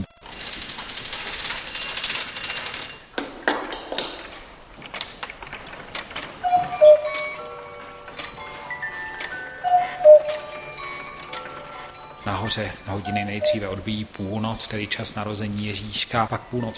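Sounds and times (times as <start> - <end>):
weight-driven clockwork mechanism of a mechanical nativity scene ticking and ratcheting: 0.0 - 3.2, 4.0 - 16.7
bright chiming tones: 6.4 - 16.7
person talking: 12.2 - 16.7.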